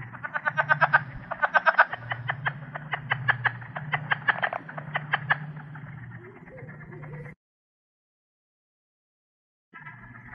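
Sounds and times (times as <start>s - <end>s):
low humming drone: 0.0s - 7.4s, 9.8s - 10.3s
plains leopard frog chuckling in short dry pulses: 0.0s - 7.4s.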